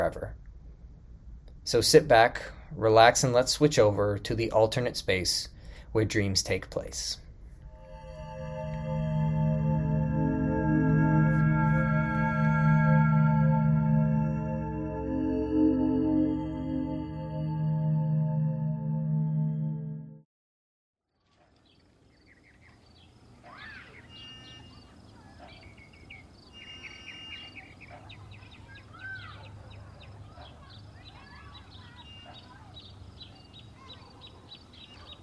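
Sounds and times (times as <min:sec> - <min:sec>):
speech: 0:00.0 - 0:00.4, 0:01.6 - 0:07.2
short musical tone: 0:07.6 - 0:20.3
birds singing and calling outdoors: 0:21.7 - 0:35.2.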